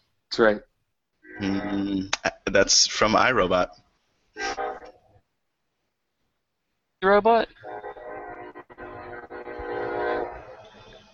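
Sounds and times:
speech: 0.4s - 0.7s, 1.4s - 3.8s, 7.0s - 7.8s
freight train horn drone at a robotics factory: 7.6s - 11.0s.

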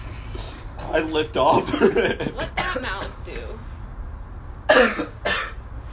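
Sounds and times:
speech: 1.0s - 2.5s
person coughing: 4.7s - 5.6s.

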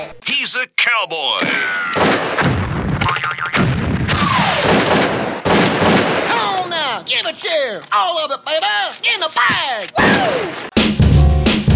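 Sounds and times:
speech: 0.0s - 2.6s, 7.1s - 10.7s
gunshot sound effects: 1.4s - 7.3s, 9.5s - 10.8s.

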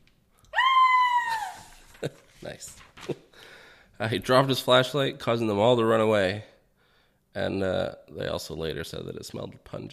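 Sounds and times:
person imitating a scream: 0.5s - 1.8s
speech: 2.0s - 6.5s, 7.4s - 9.9s.

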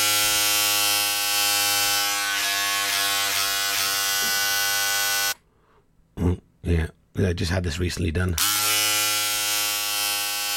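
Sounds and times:
electric shaver buzzing: 0.0s - 5.4s, 8.4s - 10.5s
speech: 6.7s - 8.8s.

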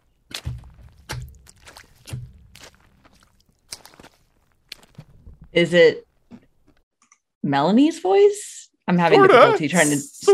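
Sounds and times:
slow heavy wet footsteps circling: 0.2s - 5.5s
speech: 5.6s - 6.1s, 7.5s - 10.3s.

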